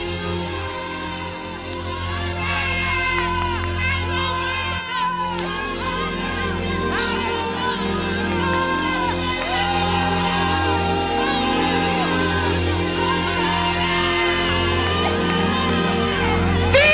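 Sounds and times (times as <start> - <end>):
large crowd shouting and cheering during prayer and worship: 0.0 - 16.9.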